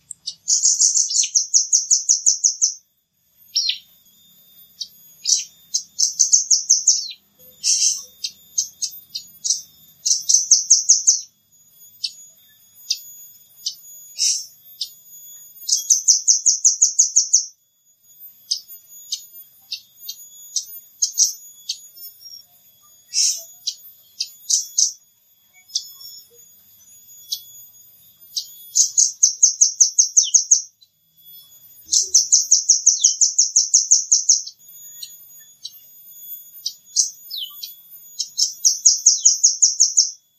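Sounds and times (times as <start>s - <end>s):
rambatan bird calling: 0.0s - 2.8s, 3.5s - 3.9s, 4.8s - 11.3s, 12.9s - 15.0s, 19.1s - 25.0s, 28.3s - 30.8s, 31.5s - 35.8s, 36.6s - 40.2s.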